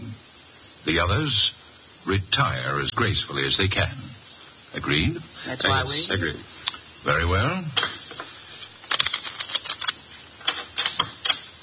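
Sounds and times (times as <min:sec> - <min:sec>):
speech: 0:00.8 - 0:04.1, 0:04.7 - 0:08.0
deck of playing cards being shuffled: 0:08.9 - 0:11.5.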